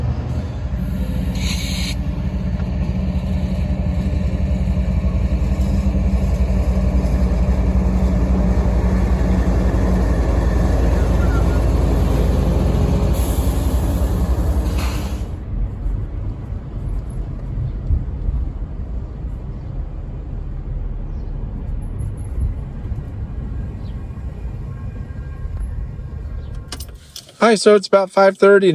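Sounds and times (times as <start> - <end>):
heavy diesel locomotive engine rumbling in a rail yard: 0.0 - 28.7
hissy bursts: 0.8 - 2.2
speech: 27.5 - 28.7.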